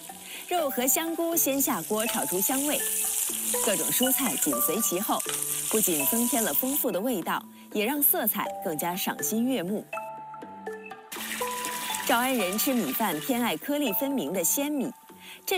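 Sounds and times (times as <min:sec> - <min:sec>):
meat and shiitake mushrooms stir-frying in a wok: 0:00.0 - 0:06.9, 0:11.1 - 0:14.1
melodic music: 0:00.0 - 0:15.5.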